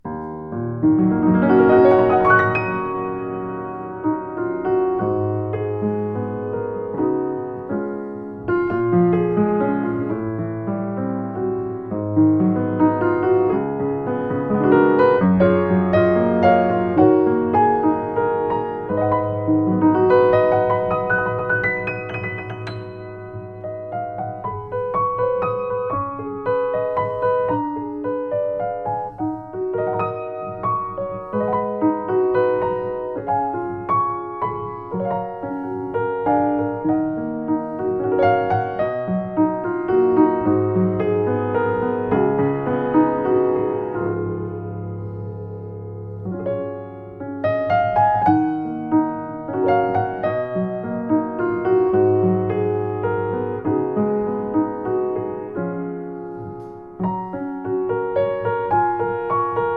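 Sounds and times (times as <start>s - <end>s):
Yamaha U1 M piano: 0.0s - 59.7s.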